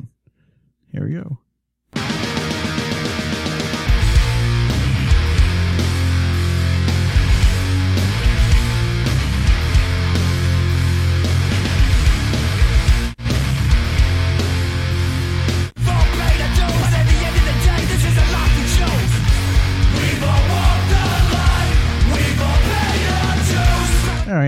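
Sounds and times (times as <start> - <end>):
speech: 1.0 - 1.4
punk rock song with full band: 2.0 - 24.3.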